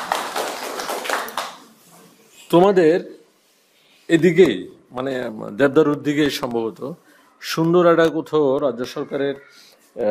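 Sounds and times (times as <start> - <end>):
hand clapping for a correct quiz answer: 0.0 - 1.7
speech: 2.5 - 3.2, 4.1 - 10.0.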